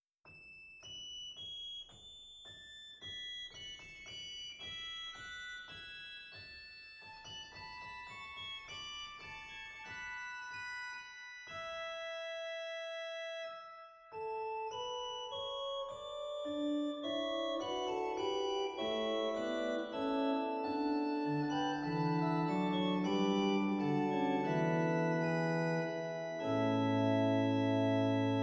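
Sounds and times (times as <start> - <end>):
pipe organ Borstwerk Quintanus stop in Zwolle: 11.6 - 28.4.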